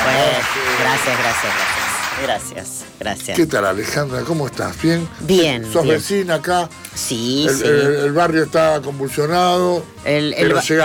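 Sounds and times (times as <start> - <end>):
audience applause at a live event: 0.0 - 2.3
speech: 0.9 - 10.8.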